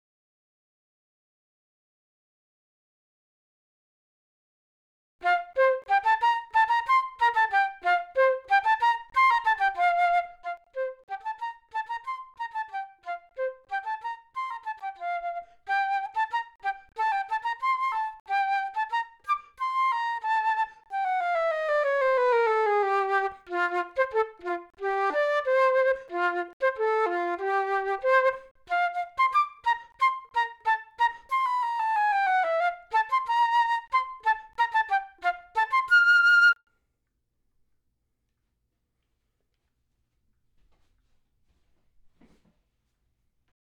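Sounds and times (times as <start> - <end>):
flute etude: 5.2 - 36.6.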